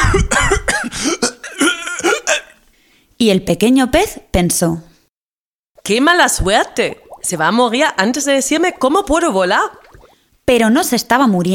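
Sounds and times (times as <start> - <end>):
person coughing in a rough raspy fit: 0.0 - 2.6
speech: 3.2 - 4.9, 5.9 - 11.5.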